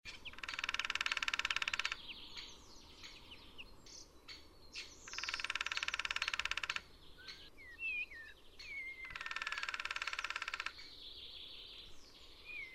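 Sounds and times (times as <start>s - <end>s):
lesser spotted woodpecker drumming: 0.1s - 3.2s, 4.3s - 7.5s, 9.0s - 10.9s
other birds whistling and chirping: 0.1s - 6.4s, 7.1s - 12.7s.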